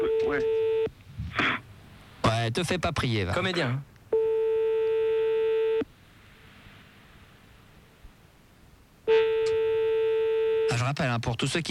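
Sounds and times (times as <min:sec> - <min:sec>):
speech: 0:00.3 - 0:00.6, 0:02.4 - 0:03.9, 0:10.9 - 0:11.7
telephone ringing tone down the line while calling a petrol station in Lyon: 0:04.2 - 0:05.8, 0:09.1 - 0:10.8.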